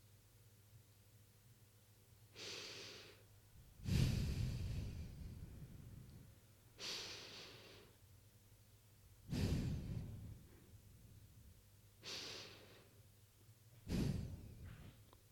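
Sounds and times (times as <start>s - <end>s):
deep breathing during a guided breathing exercise: 2.4s - 8.0s, 9.2s - 11.1s, 12.0s - 13.0s, 13.8s - 15.1s.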